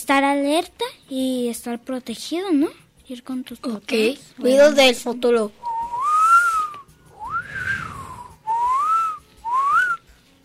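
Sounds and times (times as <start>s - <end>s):
speech: 0.0s - 5.6s
person whistling melodic phrases: 5.6s - 10.0s.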